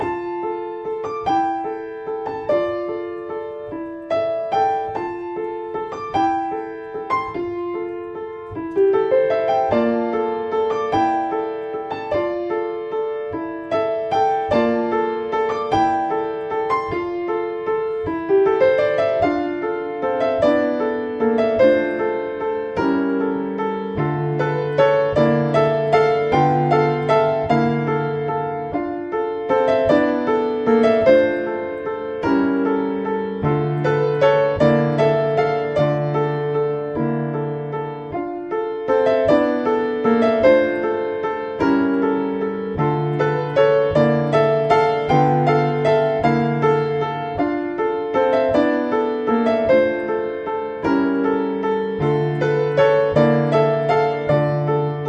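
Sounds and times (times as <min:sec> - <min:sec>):
petite piano: 0:00.0 - 0:55.0.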